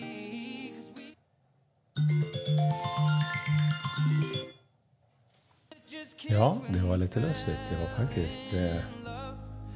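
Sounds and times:
phone ringtone with bright melodic tune over a pulsing beat: 2.0 - 4.7
speech: 6.3 - 9.1.

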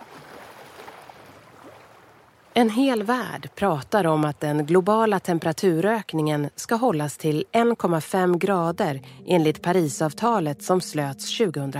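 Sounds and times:
lake swell washing in: 0.0 - 2.5
faint splashy ripples on lake water: 0.0 - 2.6
speech: 2.6 - 11.7.

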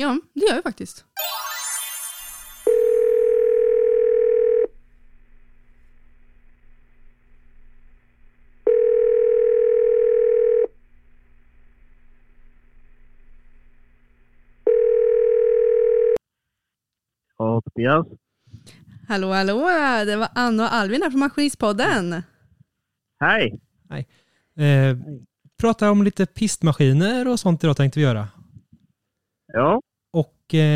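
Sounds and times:
speech: 0.0 - 1.4, 17.8 - 22.3, 23.2 - 28.4, 29.5 - 30.7
telephone ringback tone while placing a call: 1.2 - 4.7, 8.6 - 10.8, 14.6 - 16.2.

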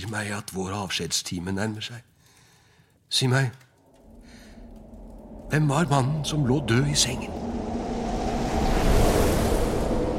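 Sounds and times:
speech: 0.1 - 2.1, 3.1 - 3.6, 5.5 - 7.6
violent gust of wind howling through a room: 3.8 - 10.1.

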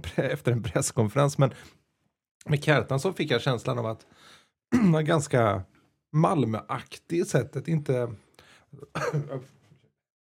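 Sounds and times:
speech: 0.0 - 1.8, 2.4 - 9.6
cough: 4.7 - 5.0, 8.8 - 9.6
rough throat-clearing rasp: 4.7 - 5.0, 8.8 - 9.6.

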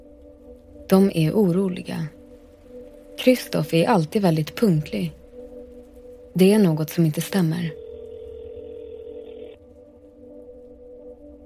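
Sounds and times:
speech: 0.9 - 2.2, 3.2 - 5.2, 6.4 - 7.8
electronic telephone ringing tone of an unanswered call: 7.6 - 9.6.

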